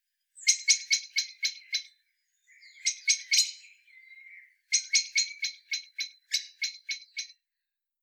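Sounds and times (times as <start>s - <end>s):
common blackbird Turdus merula giving harsh chattering calls: 0.4s - 1.9s, 2.5s - 7.4s.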